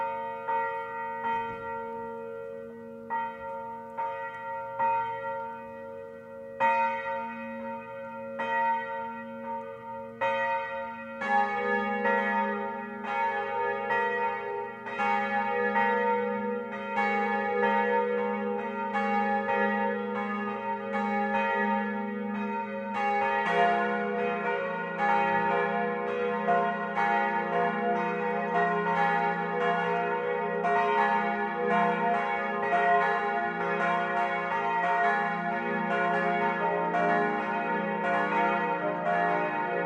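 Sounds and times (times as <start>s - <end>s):
several church bells pealing together: 0.0s - 39.8s.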